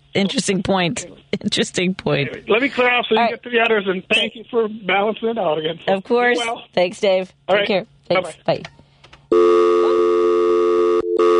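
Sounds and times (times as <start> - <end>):
speech: 0.2 - 10.0
telephone line tone after an accidental hang-up: 9.3 - 11.3.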